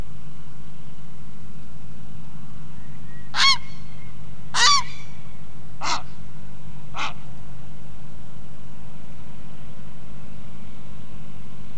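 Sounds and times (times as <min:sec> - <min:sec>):
Grey Heron Ardea cinerea calling at Khardong: 0:03.3 - 0:03.9, 0:04.5 - 0:05.2, 0:05.8 - 0:06.1, 0:07.0 - 0:07.2.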